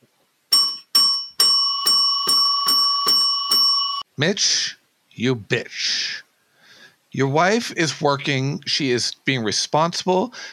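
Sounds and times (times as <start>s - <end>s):
bright metallic bell ringing: 0.5s - 4.1s
speech: 4.2s - 6.2s, 7.1s - 10.5s.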